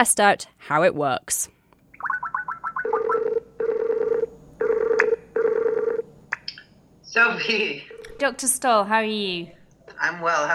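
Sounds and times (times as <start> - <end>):
speech: 0.0 - 1.6, 7.1 - 10.5
Skype video call ringing: 2.0 - 6.1, 7.1 - 8.5.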